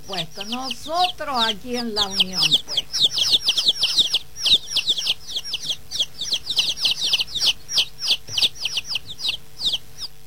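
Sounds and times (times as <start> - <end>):
group of chickens clucking and peeping: 0.0 - 10.2
speech: 0.1 - 3.1.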